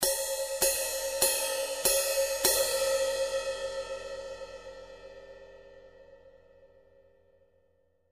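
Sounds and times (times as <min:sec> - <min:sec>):
crash ride cymbal: 0:00.0 - 0:05.2.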